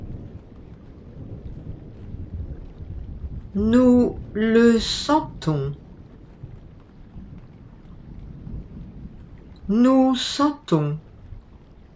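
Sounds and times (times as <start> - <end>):
deep continuous rumbling thunder from an approaching thunderstorm: 0.0 - 11.9
speech: 3.6 - 5.8, 9.7 - 11.1.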